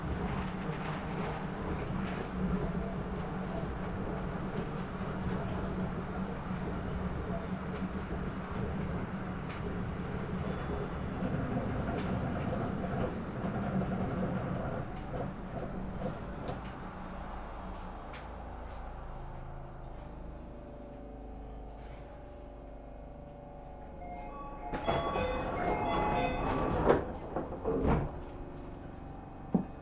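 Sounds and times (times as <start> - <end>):
train running on the tracks: 0.0 - 29.8
train brake squeal pulling into Shōwajima Station: 17.4 - 18.7.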